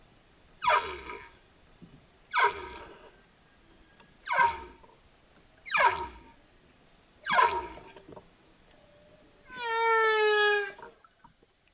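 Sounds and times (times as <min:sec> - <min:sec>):
faint hiss: 0:00.0 - 0:11.7
humpback whale song with downward-sweeping cries: 0:09.5 - 0:10.9.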